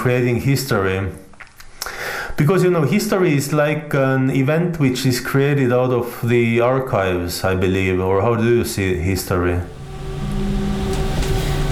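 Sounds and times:
speech: 0:00.0 - 0:01.2, 0:02.4 - 0:09.8
faint metallic squeaks: 0:09.6 - 0:11.7
tram electric motor droning with a low rumble: 0:09.6 - 0:11.7.

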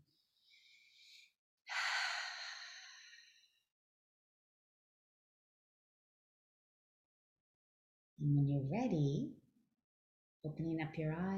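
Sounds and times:
slow deep breathing during a guided meditation: 0:00.3 - 0:03.6
speech: 0:08.2 - 0:09.4, 0:10.4 - 0:11.3.

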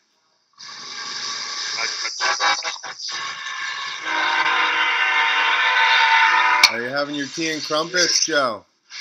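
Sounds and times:
laughter: 0:01.6 - 0:04.6
train rumbling past: 0:03.4 - 0:07.9
speech: 0:07.0 - 0:08.7.

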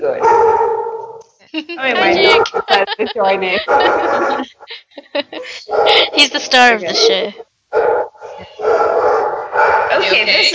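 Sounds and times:
dog barking at other dogs outside: 0:00.1 - 0:01.2, 0:02.2 - 0:02.8, 0:03.6 - 0:04.6, 0:05.7 - 0:06.2, 0:07.0 - 0:10.2
laughter: 0:01.4 - 0:06.4, 0:10.0 - 0:10.5
speech: 0:01.6 - 0:08.0, 0:09.9 - 0:10.5.

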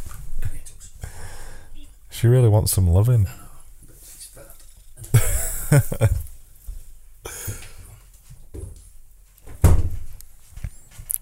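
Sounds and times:
speech: 0:02.2 - 0:03.4
laughter: 0:05.1 - 0:06.3
door thumping and rattling as a fat female cat nudges it open: 0:09.5 - 0:10.1.

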